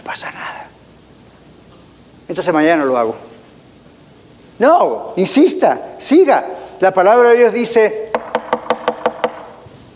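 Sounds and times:
speech: 0.1 - 0.8, 2.3 - 3.3, 4.6 - 8.0
knocking on a wooden door: 8.1 - 9.5.

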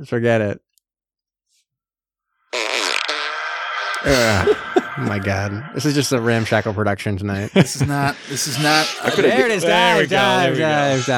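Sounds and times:
speech: 0.0 - 0.7, 4.0 - 11.1
fart sound effect: 2.5 - 5.2
laughter: 4.0 - 5.5, 7.3 - 11.1.

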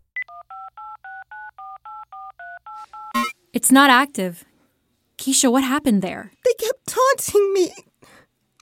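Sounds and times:
telephone dialing tones on a speakerphone: 0.2 - 3.3
speech: 3.5 - 4.5, 5.3 - 6.4, 7.1 - 7.9.

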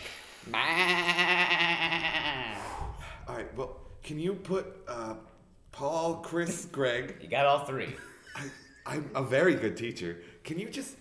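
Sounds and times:
speech: 0.5 - 1.6, 3.6 - 11.0
sheep bleating: 0.5 - 2.6
laughter: 7.7 - 9.4.

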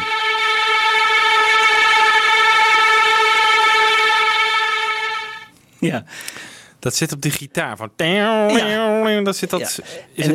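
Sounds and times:
passing train sustained horn blast sound effect mixed into a song: 0.0 - 5.5
speech: 5.8 - 10.3.

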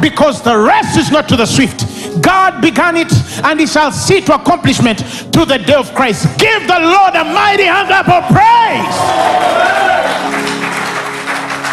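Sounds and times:
speech: 0.0 - 9.9
audience clapping: 8.8 - 11.7.

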